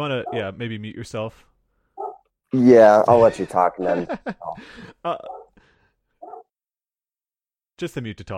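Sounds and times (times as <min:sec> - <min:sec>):
speech: 0:00.0 - 0:01.5, 0:02.5 - 0:05.4, 0:07.8 - 0:08.3
dog barking: 0:00.2 - 0:00.5, 0:02.0 - 0:02.2, 0:05.2 - 0:05.5, 0:06.2 - 0:06.5
laughter: 0:03.0 - 0:05.4.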